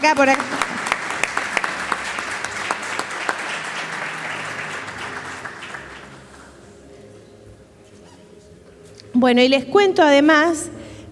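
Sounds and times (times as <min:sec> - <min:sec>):
speech: 0:00.0 - 0:00.7, 0:09.2 - 0:10.7
audience applauding: 0:00.0 - 0:06.6.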